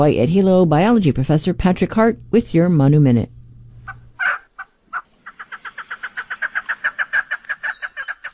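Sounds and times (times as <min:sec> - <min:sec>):
speech: 0:00.0 - 0:03.4
chukar partridge clucking and chuck calls: 0:03.9 - 0:08.3.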